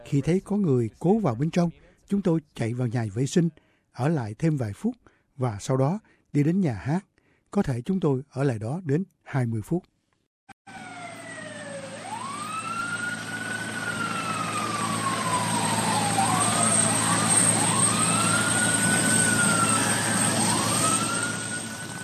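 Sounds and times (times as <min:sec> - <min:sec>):
speech: 0:00.1 - 0:09.9
emergency sirens wailing across the National Mall in Washington: 0:10.7 - 0:22.0.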